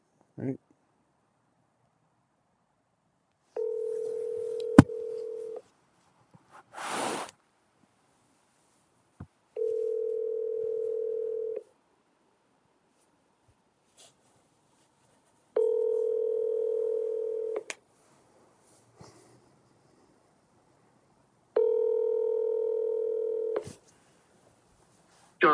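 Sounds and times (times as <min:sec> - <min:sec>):
ringback tone of an outgoing phone call placed through a voice assistant: 0:03.6 - 0:05.6, 0:09.6 - 0:11.6, 0:15.6 - 0:17.6, 0:21.6 - 0:23.6.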